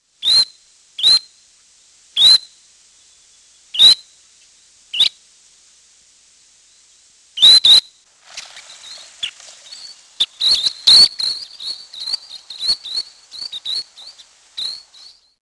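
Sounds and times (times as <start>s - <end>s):
least sandpiper: 3.7s - 4.0s, 7.4s - 15.4s.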